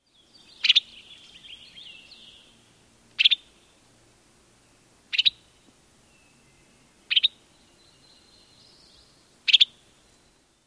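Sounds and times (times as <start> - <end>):
Western Tanager calls: 0.2 - 2.6, 3.2 - 3.7, 5.1 - 10.4.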